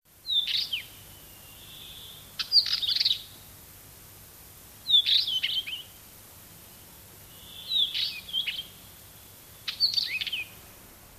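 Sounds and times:
northern wheatear song: 0.2 - 3.5, 4.9 - 6.0, 7.3 - 10.6.

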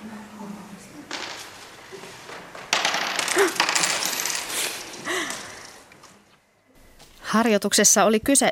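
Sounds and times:
coins dropping and clattering onto a hard floor: 1.1 - 5.8
speech: 7.3 - 8.4.

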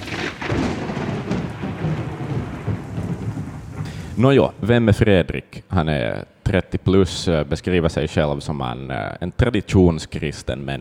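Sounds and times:
loud roll of thunder with sharp crack and deep rumble: 0.0 - 4.6
rain hissing steadily: 0.0 - 4.7
speech: 4.2 - 10.8.

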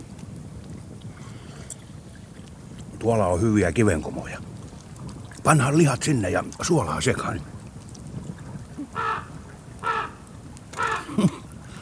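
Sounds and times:
low outdoor rumble: 0.0 - 11.7
speech: 3.0 - 4.6, 5.4 - 7.6
raven cawing: 8.9 - 11.1.

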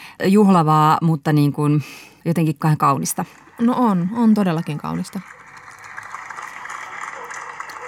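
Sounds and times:
speech: 0.2 - 5.4
many people clapping from apartment balconies across a city block: 3.4 - 7.8.

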